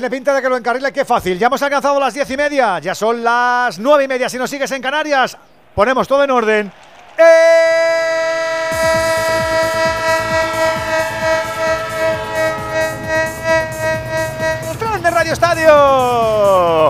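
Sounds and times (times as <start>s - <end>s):
speech: 0.0s - 7.8s, 15.3s - 16.8s
train horn: 8.0s - 16.0s.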